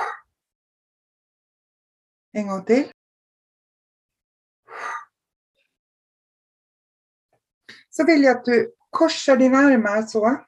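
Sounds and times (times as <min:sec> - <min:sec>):
deep breath during a guided relaxation exercise: 0:00.0 - 0:00.3, 0:04.7 - 0:05.2
speech: 0:02.3 - 0:03.0, 0:08.0 - 0:10.4.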